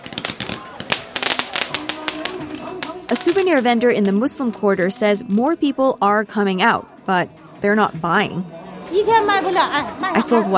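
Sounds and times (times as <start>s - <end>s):
New Year fireworks and firecrackers popping outdoors in Xi'an: 0.0s - 4.6s
murmur of young people's crowd voices in the street: 0.0s - 10.5s
speech: 3.3s - 10.5s.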